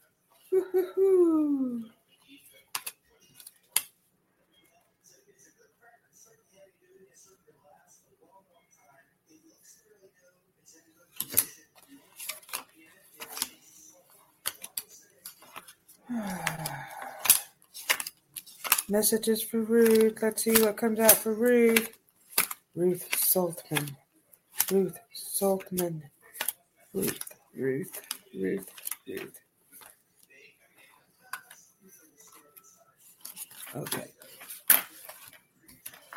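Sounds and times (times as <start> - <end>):
speech: 0.5 - 1.9, 16.1 - 17.0, 18.9 - 22.0, 22.8 - 24.0, 24.7 - 26.2, 26.9 - 29.4, 33.7 - 34.1
deck of cards being shuffled: 14.4 - 30.0, 33.1 - 36.1
vocal sounds: 16.1 - 17.5.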